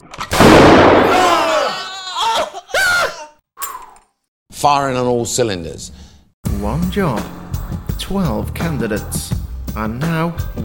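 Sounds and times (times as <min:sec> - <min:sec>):
shotgun blast: 0:00.3 - 0:01.3
speech: 0:04.6 - 0:06.0, 0:06.6 - 0:10.6.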